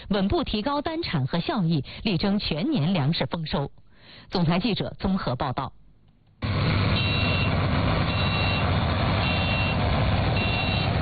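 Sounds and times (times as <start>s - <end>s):
speech: 0.1s - 5.8s
driverless combine harvesters working in a farm field in Heilongjiang, engine roar: 6.4s - 11.0s
high electronic beeps: 7.0s - 8.6s, 9.2s - 9.8s, 10.4s - 10.9s.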